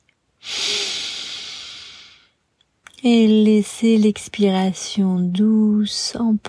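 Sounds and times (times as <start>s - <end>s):
slow breath in through the nose during an evening meditation: 0.4s - 2.3s
speech: 3.0s - 6.4s.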